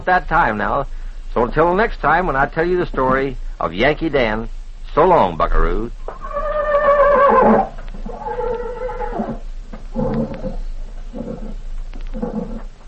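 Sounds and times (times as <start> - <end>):
speech: 0.0 - 6.0, 7.3 - 7.7
horse neighing: 6.1 - 10.6.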